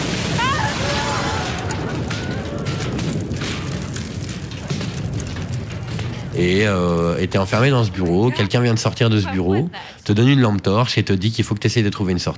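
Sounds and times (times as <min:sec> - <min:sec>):
video game explosion rumbling: 0:00.0 - 0:09.7
speech: 0:06.4 - 0:12.3.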